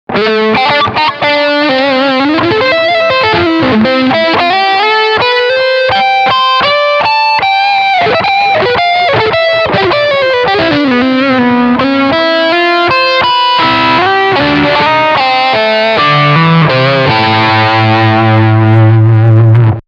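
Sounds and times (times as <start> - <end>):
distorted electric guitar lick on both pickups: 0.1 - 19.8.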